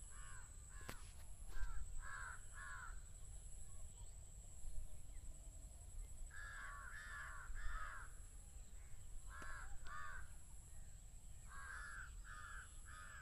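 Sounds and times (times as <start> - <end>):
steady outdoor hiss: 0.0 - 13.2
two pairs of crows cawing back and forth: 0.1 - 3.0, 6.3 - 8.2, 8.8 - 10.4, 11.4 - 13.2.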